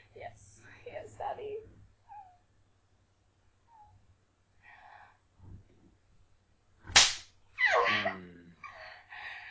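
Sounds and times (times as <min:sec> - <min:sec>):
quiet breathy noises: 0:00.0 - 0:06.7, 0:08.0 - 0:09.5
hand slapping on skin: 0:06.8 - 0:07.4.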